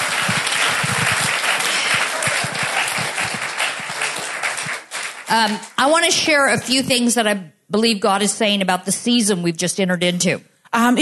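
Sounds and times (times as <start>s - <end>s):
crowd applauding with many hands clapping: 0.0s - 5.8s
speech: 5.3s - 11.0s.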